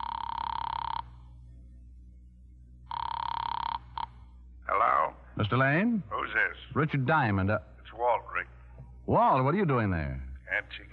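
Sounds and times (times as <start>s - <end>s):
telephone ringing on the other end of a call from a phone booth: 0.0s - 1.4s, 2.8s - 4.4s
low hum: 0.0s - 10.9s
speech: 5.4s - 7.7s, 9.1s - 10.8s.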